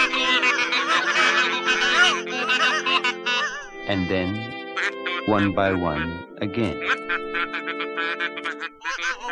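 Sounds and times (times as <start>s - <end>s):
dense chorus of geese honking: 0.0s - 9.2s
laughter: 0.0s - 9.2s
speech: 3.9s - 4.6s, 5.2s - 9.2s.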